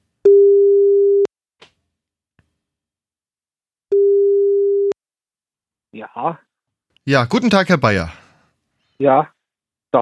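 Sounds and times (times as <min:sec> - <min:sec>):
steady telephone line tone while calling back: 0:00.3 - 0:01.3, 0:03.9 - 0:05.0
speech: 0:06.0 - 0:06.5, 0:07.1 - 0:08.2, 0:09.0 - 0:10.0.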